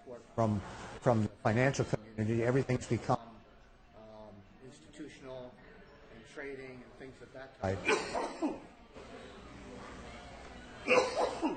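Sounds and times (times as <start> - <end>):
speech: 0.1 - 3.3, 6.4 - 8.6, 10.9 - 11.5
person coughing: 7.8 - 8.7, 10.9 - 11.5.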